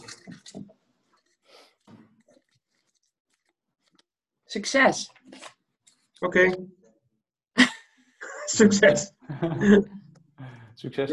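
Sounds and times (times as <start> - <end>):
slip of paper rustling and crinkling: 0.0 - 4.0, 5.1 - 6.2
speech: 4.5 - 5.2, 6.2 - 6.8, 8.6 - 10.0, 10.8 - 11.1
laughter: 8.2 - 10.1.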